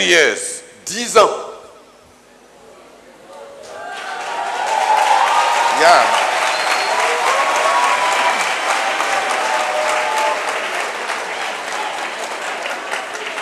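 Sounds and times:
speech: 0:00.0 - 0:01.5, 0:05.8 - 0:06.2
audience applauding: 0:03.6 - 0:13.4.

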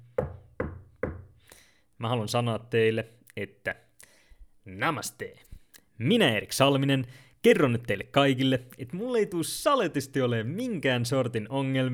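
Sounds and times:
hollow knocks on wood: 0:00.0 - 0:01.3
speech: 0:02.0 - 0:03.8, 0:04.7 - 0:11.9.

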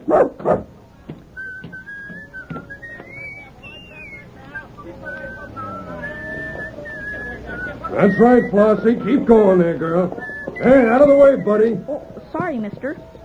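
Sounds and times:
speech: 0:00.0 - 0:00.6, 0:08.0 - 0:13.1
dog in a circus wagon barking: 0:00.0 - 0:00.8
faint whistling: 0:00.0 - 0:13.2
laughter: 0:00.0 - 0:13.2
drawn-out high whining tones: 0:01.0 - 0:13.2.

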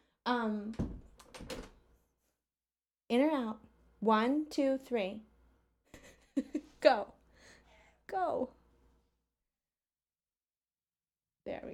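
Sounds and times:
speech: 0:00.3 - 0:01.0, 0:03.1 - 0:05.3, 0:06.4 - 0:07.1, 0:08.1 - 0:08.6
door creaking shut on squealing hinges and latching: 0:00.7 - 0:01.8.

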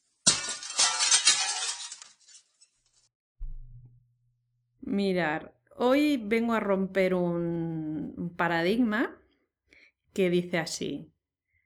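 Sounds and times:
mirror shattering: 0:00.0 - 0:03.1
mirror glass debris tinkling and clinking: 0:00.1 - 0:03.0
brief low tone: 0:03.4 - 0:04.0
speech: 0:04.9 - 0:09.2, 0:10.2 - 0:11.1.

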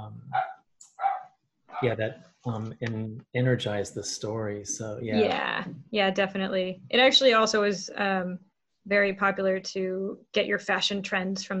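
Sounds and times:
dog barking: 0:00.4 - 0:01.2
laughter: 0:01.8 - 0:05.6
speech: 0:01.8 - 0:11.5.

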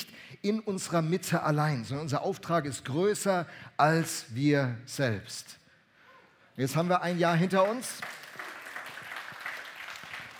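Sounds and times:
speech: 0:00.4 - 0:05.6, 0:06.6 - 0:08.2
audience applause: 0:07.6 - 0:10.3.

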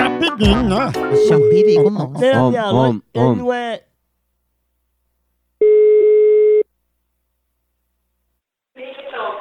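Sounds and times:
speech: 0:00.2 - 0:03.9
telephone line tone while a call is placed: 0:01.1 - 0:01.9, 0:05.6 - 0:06.6.

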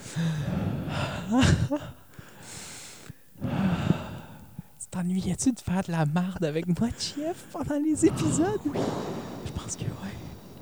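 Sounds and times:
people breathing together: 0:00.0 - 0:04.9, 0:06.9 - 0:10.6
speech: 0:01.3 - 0:02.0, 0:05.0 - 0:10.2.

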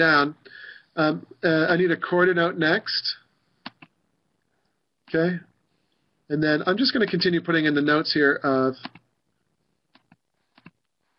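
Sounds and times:
speech: 0:00.0 - 0:03.2, 0:05.1 - 0:05.5, 0:06.3 - 0:09.0
computer keyboard typing clicks: 0:03.6 - 0:03.9, 0:08.8 - 0:09.0, 0:09.9 - 0:10.8.

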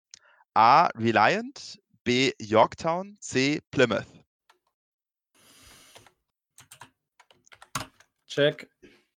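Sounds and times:
speech: 0:00.6 - 0:04.2, 0:08.3 - 0:08.7
typing on a keyboard: 0:06.0 - 0:08.1.

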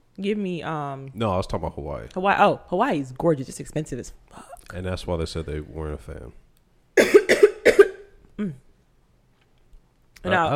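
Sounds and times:
speech: 0:00.2 - 0:06.4, 0:08.4 - 0:08.6, 0:10.2 - 0:10.5
harsh coughs in a coughing fit: 0:07.0 - 0:08.6.

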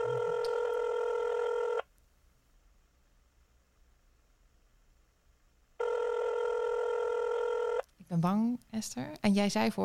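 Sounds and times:
telephone ringing unanswered: 0:00.0 - 0:01.8, 0:05.8 - 0:07.8
speech: 0:08.1 - 0:09.8.

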